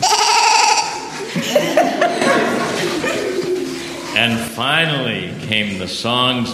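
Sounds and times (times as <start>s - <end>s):
sheep bleating excitedly: 0.0s - 1.1s
laughter: 0.8s - 5.3s
speech: 4.2s - 6.5s.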